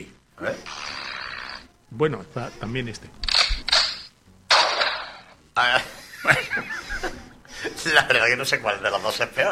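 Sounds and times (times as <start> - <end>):
speech: 0.0 - 0.8, 1.9 - 3.3, 5.6 - 6.4, 7.8 - 9.5
sharp gunshot sound effects: 3.8 - 5.3
laughter: 5.8 - 8.1.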